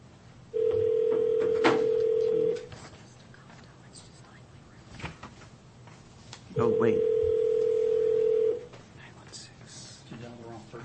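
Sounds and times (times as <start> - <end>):
telephone keypad tone from dialing a phone number: 0.6 - 2.6, 6.6 - 8.6.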